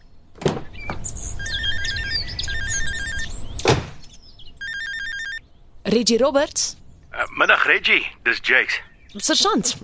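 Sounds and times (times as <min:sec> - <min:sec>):
cellphone ringing with a warbling electronic tone inside a car: 0:01.4 - 0:03.4, 0:04.6 - 0:05.4
speech: 0:05.9 - 0:09.8.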